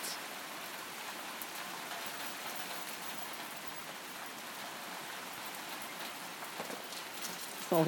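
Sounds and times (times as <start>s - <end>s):
heavy rain pouring: 0.0s - 7.8s.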